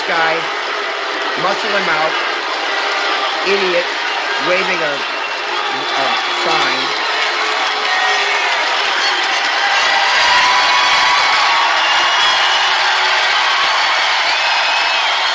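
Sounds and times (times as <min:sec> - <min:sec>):
large crowd cheering and shouting in an auditorium: 0:00.0 - 0:15.3
speech: 0:01.4 - 0:02.3, 0:03.4 - 0:05.1, 0:05.7 - 0:07.0
whoops rising from the crowd: 0:05.4 - 0:15.3.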